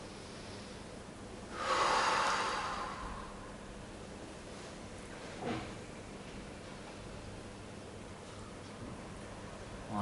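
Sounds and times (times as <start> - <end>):
deep breath taken while seated during a guided relaxation exercise: 1.5 - 3.6.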